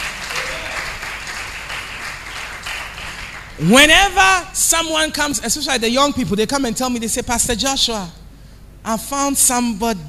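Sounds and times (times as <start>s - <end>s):
crowd applauding: 0.0s - 3.6s
speech: 3.6s - 8.2s, 8.8s - 10.0s.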